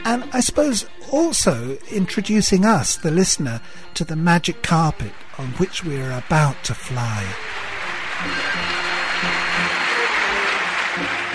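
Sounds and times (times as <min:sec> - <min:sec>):
speech: 0:00.1 - 0:09.4
large concert audience applauding as singer enters stage in a concert hall: 0:04.2 - 0:11.3.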